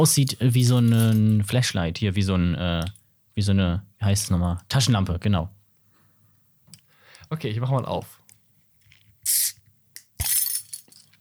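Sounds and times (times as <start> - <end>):
faint handling noise: 0.0 - 1.7, 10.0 - 11.1
speech: 0.0 - 5.6, 7.3 - 8.2, 9.2 - 9.6
keys jingling: 0.2 - 1.5, 10.0 - 11.1.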